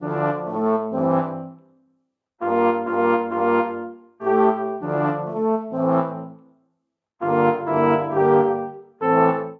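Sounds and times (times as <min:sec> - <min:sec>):
brass quartet chord phrase in D minor: 0:00.0 - 0:01.6, 0:02.4 - 0:06.4, 0:07.2 - 0:09.5.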